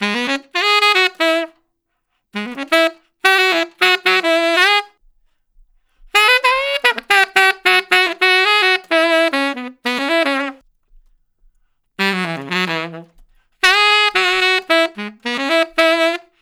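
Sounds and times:
traditional jazz tenor saxophone solo: 0:00.0 - 0:01.7, 0:02.4 - 0:05.0, 0:06.1 - 0:10.6, 0:12.0 - 0:16.4.

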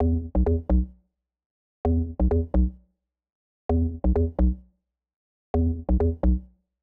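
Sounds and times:
bass loop: 0:00.0 - 0:00.9, 0:01.9 - 0:02.8, 0:03.7 - 0:04.6, 0:05.6 - 0:06.4.

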